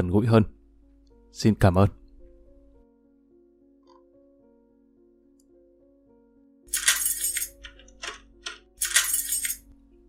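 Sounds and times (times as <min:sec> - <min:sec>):
speech: 0:00.0 - 0:00.6, 0:01.3 - 0:02.0
padlock clinking and rattling against an iron door in a prison cell block: 0:06.7 - 0:09.7.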